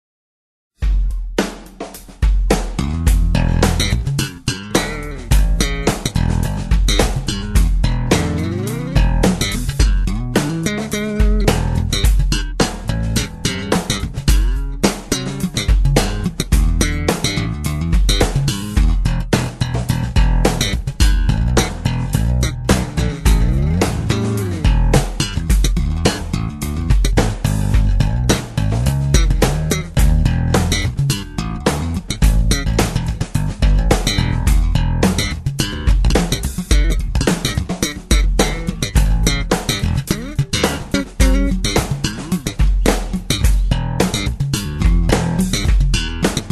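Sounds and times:
funky slap bass practice: 0.8s - 46.5s.

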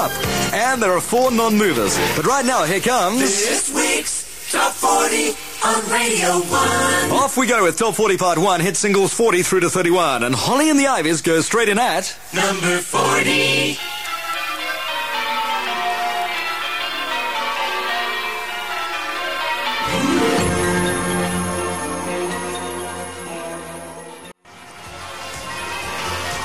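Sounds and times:
dense full musical backing: 0.0s - 9.1s, 12.4s - 26.4s
speech: 0.0s - 13.9s
bright ringing bells: 13.8s - 26.4s.

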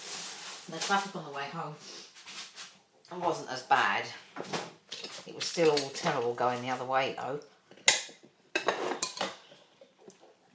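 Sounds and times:
speech: 0.7s - 2.1s, 3.1s - 7.6s
spoon clinking and scraping while spooning cheesy filling onto unbuttered bread: 8.6s - 9.5s.

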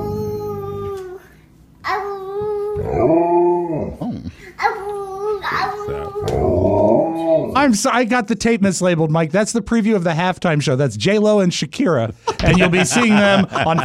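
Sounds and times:
Alaskan Malamute howling and yowling: 0.0s - 1.2s, 1.9s - 4.0s, 5.3s - 7.6s
toddler babbling: 0.0s - 3.0s, 4.6s - 6.6s
speech: 7.6s - 13.8s
laughter: 12.3s - 13.8s.

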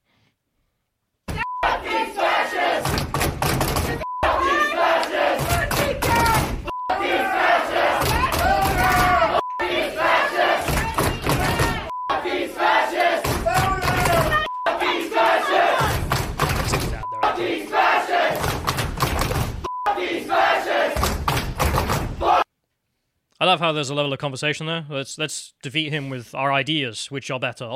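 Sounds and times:
crowd of protesters chanting and shouting: 1.3s - 22.5s
speech: 23.4s - 27.7s.

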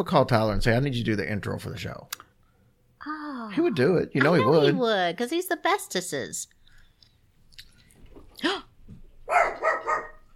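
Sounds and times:
speech: 0.0s - 2.2s, 3.0s - 6.6s, 8.4s - 8.7s
dog barking in a house: 9.2s - 10.3s.

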